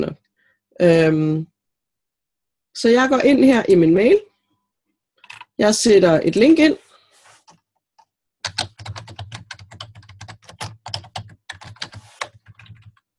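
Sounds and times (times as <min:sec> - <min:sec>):
speech: 0:00.0 - 0:00.2, 0:00.8 - 0:01.5, 0:02.8 - 0:04.3, 0:05.6 - 0:06.8
rapid typing on a computer keyboard writing an email: 0:08.4 - 0:13.0.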